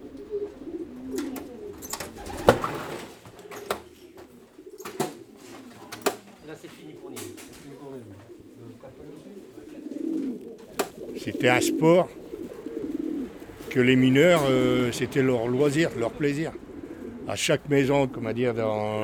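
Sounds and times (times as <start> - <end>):
pigeon wings flapping: 0.0 - 8.5, 9.7 - 17.4
flock of homing pigeons cooing in a loft: 0.0 - 19.0
scattered sharp taps: 10.7 - 11.0
speech: 11.2 - 12.2, 13.8 - 16.6, 17.3 - 19.0.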